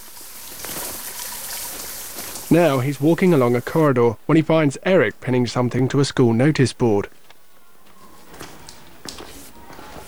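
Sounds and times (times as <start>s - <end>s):
splashing and rustling of a bag rinsed under a shower: 0.0s - 5.9s, 7.2s - 10.0s
running shower water: 0.0s - 6.1s, 7.9s - 10.0s
speech: 2.5s - 7.2s.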